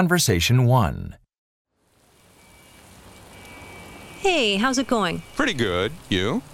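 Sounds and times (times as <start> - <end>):
speech: 0.0 - 1.2, 4.2 - 6.5
steady rain falling: 1.8 - 6.5.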